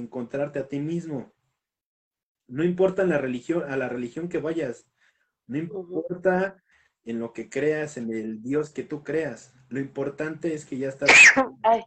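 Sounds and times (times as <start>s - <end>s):
speech: 0.0s - 1.4s, 2.5s - 4.9s, 5.5s - 11.8s
sharp loud sneeze: 11.0s - 11.5s.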